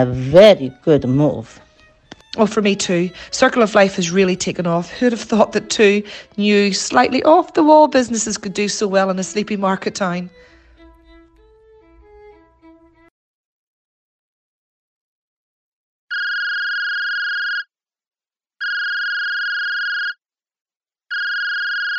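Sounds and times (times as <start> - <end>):
speech: 0.0 - 1.6, 2.3 - 10.5
music: 0.0 - 13.1
electronic telephone ringing: 16.1 - 17.7, 18.6 - 20.2, 21.1 - 21.9.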